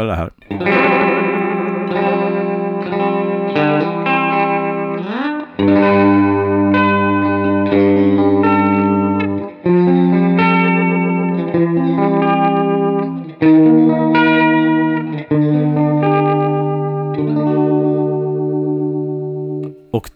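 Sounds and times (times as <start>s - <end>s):
speech: 0.0s - 1.1s
electric guitar chords played through a chorus pedal: 0.0s - 18.8s.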